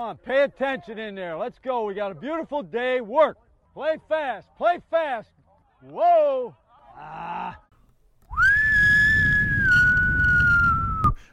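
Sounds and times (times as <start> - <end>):
speech: 0.0 - 7.6
whistle blown in a long piercing blast: 8.3 - 11.2.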